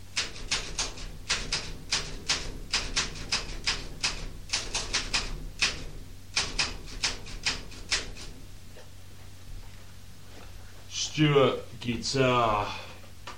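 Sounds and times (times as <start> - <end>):
typewriter keys clattering: 0.2 - 8.3
speech: 11.2 - 12.8.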